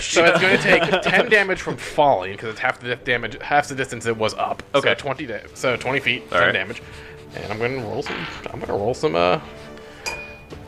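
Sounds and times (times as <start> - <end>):
laughter: 0.0 - 2.6
speech: 0.0 - 9.6
glass of whiskey knocked, clinking: 10.0 - 10.6.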